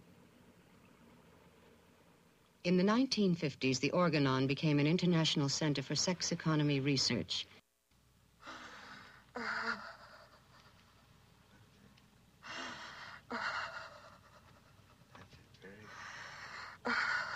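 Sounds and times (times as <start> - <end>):
speech: 2.6 - 7.6
deep heavy breathing with noisy inhales and forceful exhales: 8.4 - 10.7, 12.4 - 14.9, 15.7 - 17.3.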